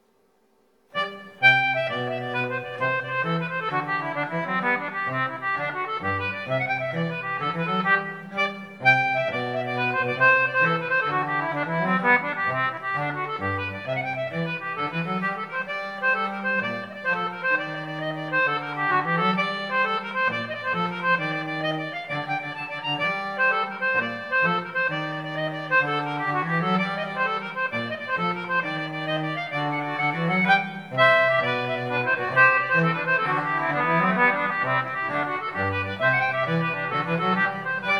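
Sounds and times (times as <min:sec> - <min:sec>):
concertina playing: 0:00.9 - 0:37.9.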